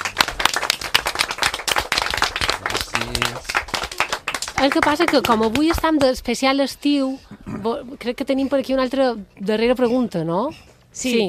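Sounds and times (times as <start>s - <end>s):
small group applauding after an interview: 0.0s - 5.8s
speech: 4.6s - 11.2s.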